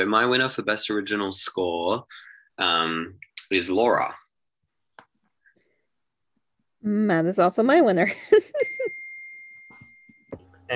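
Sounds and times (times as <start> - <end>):
speech: 0.0 - 4.2, 6.8 - 8.6
phone text message notification chime: 8.6 - 10.7.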